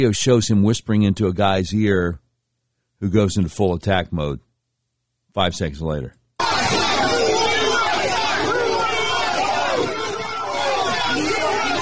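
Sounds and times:
speech: 0.0 - 2.2, 3.0 - 4.4, 5.3 - 6.5
dense crowd of many overlapping voices in loud indistinct chatter: 6.4 - 11.8.

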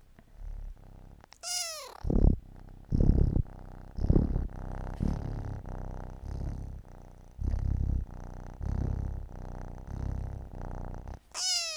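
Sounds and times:
kitten purring: 0.0 - 11.7
kitten giving a high meow: 1.4 - 2.0, 11.3 - 11.7.

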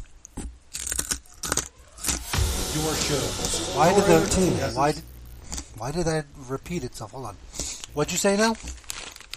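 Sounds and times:
person chewing something crunchy: 0.0 - 2.2
speech: 2.8 - 5.1, 5.8 - 8.8.

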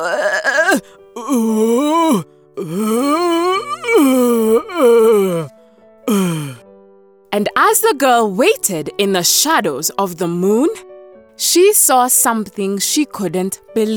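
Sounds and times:
very sick man moaning and groaning: 0.0 - 5.5, 6.1 - 6.6
speech: 7.8 - 13.9.

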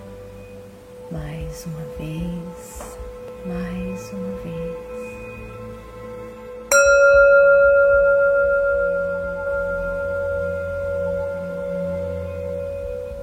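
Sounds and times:
speech: 1.1 - 5.0
meditation bell struck and ringing: 6.7 - 13.2.

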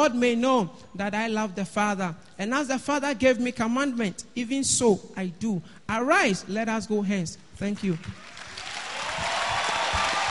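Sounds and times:
speech: 0.0 - 8.4
audience applause: 7.9 - 10.2.

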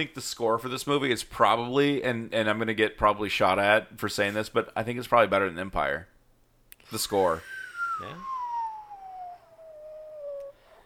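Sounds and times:
speech: 0.0 - 6.1, 6.9 - 8.3
person imitating an incoming intercontinental ballistic missile whistle: 7.4 - 10.8.

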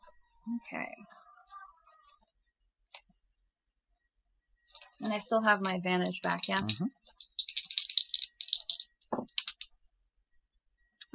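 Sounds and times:
speech: 0.5 - 1.3, 5.0 - 7.3
new dice tumbling and rattling across a surface in a tabletop game roll: 6.0 - 9.7.

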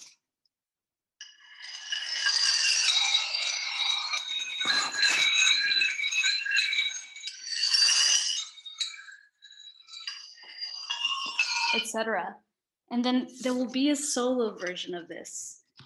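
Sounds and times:
percussion piece played on tuned tiles: 1.2 - 12.2
speech: 11.9 - 15.6.

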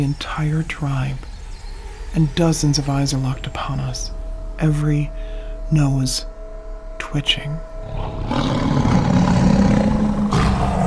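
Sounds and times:
speech: 0.0 - 1.3, 2.1 - 6.3, 7.1 - 8.7
big cats roaring: 7.8 - 10.8.

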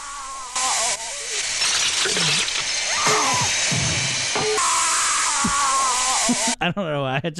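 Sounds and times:
hissing noise: 0.5 - 6.6
shrill whining drill sound effect from a film: 1.3 - 6.5
speech: 2.0 - 2.4, 6.6 - 7.3.

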